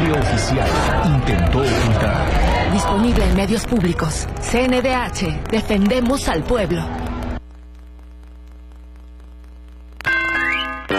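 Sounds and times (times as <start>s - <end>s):
speech: 0.1s - 7.1s
low steady hum: 3.2s - 10.0s.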